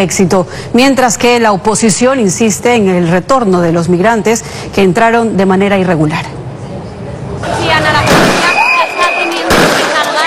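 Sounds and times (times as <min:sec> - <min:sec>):
speech: 0:00.0 - 0:06.4
gunshots fired into the air in Ceuta: 0:08.0 - 0:08.7, 0:09.4 - 0:10.1.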